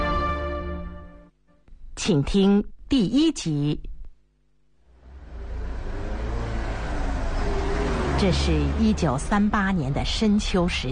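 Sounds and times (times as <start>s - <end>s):
speech: 2.0s - 3.9s, 8.2s - 10.9s
truck engine roaring while driving hard on a mountain road: 4.9s - 10.5s.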